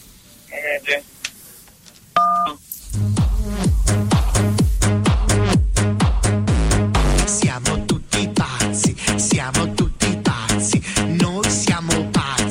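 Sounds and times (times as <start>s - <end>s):
speech: 0.8s - 1.2s
telephone keypad tone from pressing key one: 2.2s - 2.6s
rhythmic telephone hold music: 2.7s - 12.5s.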